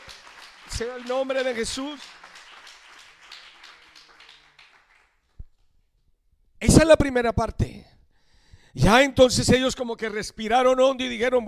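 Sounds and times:
audience applauding: 0:00.0 - 0:05.6
speech: 0:00.8 - 0:02.1, 0:06.8 - 0:07.8, 0:08.8 - 0:11.4.

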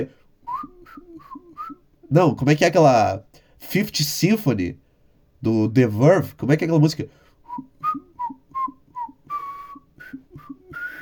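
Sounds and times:
speech: 0:00.0 - 0:00.2, 0:02.1 - 0:04.8, 0:05.4 - 0:08.1
person whistling a bouncy jazz melody: 0:00.4 - 0:01.8, 0:07.4 - 0:11.0.

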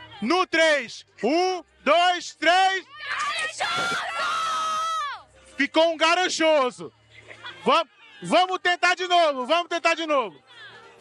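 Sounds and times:
speech: 0:00.2 - 0:04.5, 0:05.6 - 0:07.0, 0:07.6 - 0:10.4
crowd yelling a single drawn-out name in unison: 0:02.9 - 0:05.2.

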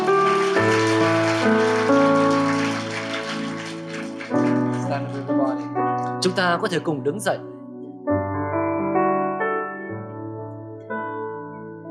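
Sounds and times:
congregation applauding: 0:00.0 - 0:06.2
sustained keyboard chords: 0:00.0 - 0:11.8
speech: 0:06.2 - 0:07.5.

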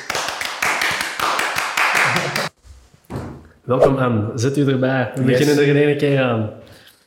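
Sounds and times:
group applauding: 0:00.0 - 0:02.6
speech: 0:03.7 - 0:06.6.

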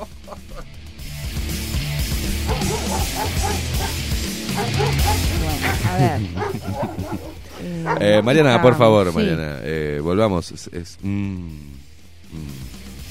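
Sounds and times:
laughter: 0:00.0 - 0:00.8, 0:04.7 - 0:08.0
person imitating a dog with yips barks and whimpers: 0:02.4 - 0:08.8
speech: 0:07.7 - 0:12.6.

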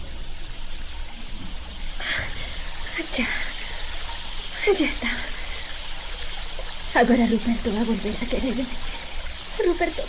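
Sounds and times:
river water rushing and churning: 0:01.2 - 0:10.0
speech: 0:03.2 - 0:03.4, 0:04.7 - 0:05.3, 0:06.9 - 0:08.9, 0:09.6 - 0:10.0.

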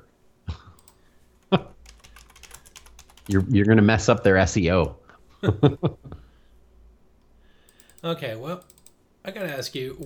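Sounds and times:
speech: 0:01.5 - 0:01.7, 0:03.3 - 0:06.2, 0:08.0 - 0:10.0
typing on a computer keyboard: 0:01.8 - 0:03.6.

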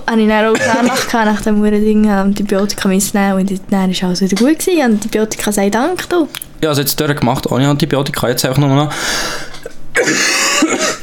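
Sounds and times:
speech: 0:00.1 - 0:11.0
person coughing harshly and forcefully: 0:00.5 - 0:01.2, 0:09.6 - 0:11.0.

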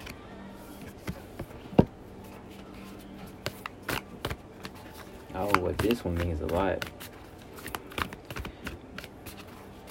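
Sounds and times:
deck of cards being shuffled: 0:02.3 - 0:09.9
speech: 0:05.4 - 0:07.1.

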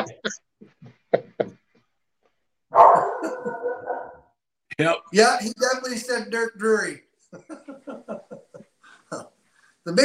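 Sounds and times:
speech: 0:00.0 - 0:00.5, 0:04.8 - 0:07.0, 0:09.8 - 0:10.0
dog barking: 0:02.7 - 0:04.3
laughter: 0:03.0 - 0:03.9, 0:07.4 - 0:09.4.

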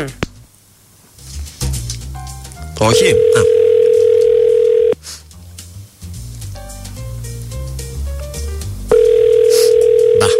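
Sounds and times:
speech: 0:00.0 - 0:00.2, 0:02.8 - 0:03.6
telephone ringback tone of outgoing call: 0:02.9 - 0:05.0, 0:08.9 - 0:10.3.

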